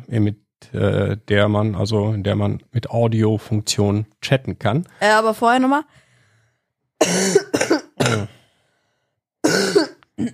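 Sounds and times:
speech: 0:00.1 - 0:06.0, 0:07.0 - 0:08.4, 0:09.5 - 0:10.3
person clearing throat: 0:07.0 - 0:08.4, 0:09.4 - 0:10.3
person coughing: 0:07.0 - 0:08.4, 0:09.4 - 0:10.3.

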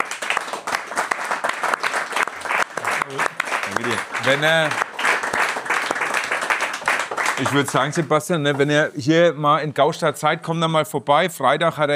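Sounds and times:
audience applause: 0:00.0 - 0:08.1
speech: 0:04.3 - 0:04.8, 0:07.4 - 0:11.9.

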